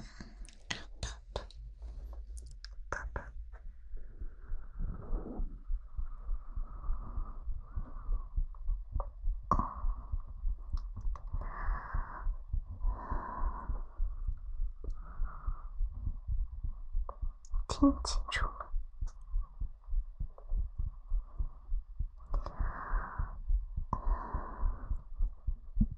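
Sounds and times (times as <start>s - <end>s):
heartbeat thumping: 0.7s - 25.9s
faint breathing: 3.8s - 17.4s, 19.3s - 25.9s
speech: 17.8s - 18.6s.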